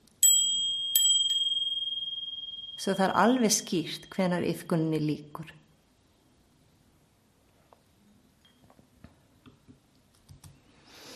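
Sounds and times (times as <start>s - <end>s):
small bell rung to end a yoga nidra practice: 0.2s - 3.6s
speech: 2.8s - 5.6s.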